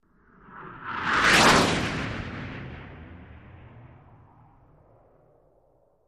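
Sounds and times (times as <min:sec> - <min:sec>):
AV-8B Harrier jet aircraft passing by: 0:00.4 - 0:04.8.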